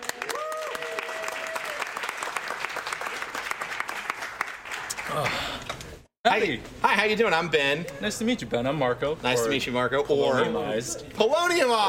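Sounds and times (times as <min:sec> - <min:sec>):
live audience clapping: 0:00.0 - 0:05.8
speech: 0:06.3 - 0:11.8.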